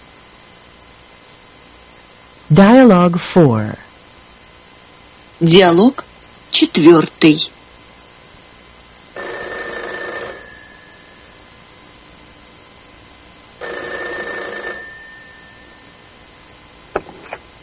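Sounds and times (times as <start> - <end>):
speech: 2.5 - 3.9, 5.4 - 7.6
telephone ringing: 9.2 - 11.5, 13.6 - 16.2.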